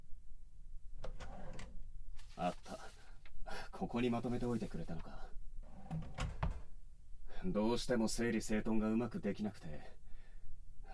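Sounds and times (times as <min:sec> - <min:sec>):
low hum: 0:00.0 - 0:10.9
shelf drawer sliding open: 0:01.0 - 0:01.8, 0:05.6 - 0:06.7
speech: 0:02.4 - 0:02.9, 0:03.8 - 0:05.3, 0:07.4 - 0:10.0.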